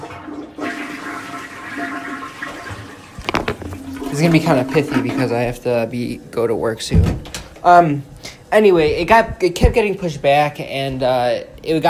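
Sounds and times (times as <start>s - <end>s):
toilet flushing: 0.0s - 6.6s
speech: 4.1s - 11.8s.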